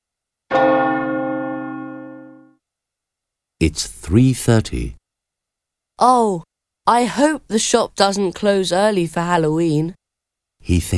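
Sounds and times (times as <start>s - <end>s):
village clock bell strike: 0.5s - 2.5s
speech: 3.6s - 5.0s, 6.0s - 10.0s, 10.6s - 10.9s.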